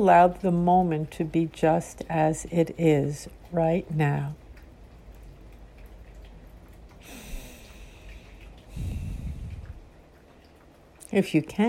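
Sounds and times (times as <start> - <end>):
speech: 0.0 - 4.4, 11.1 - 11.6
rain tapping on a window: 0.0 - 11.6
breathy exhalations: 7.0 - 9.7.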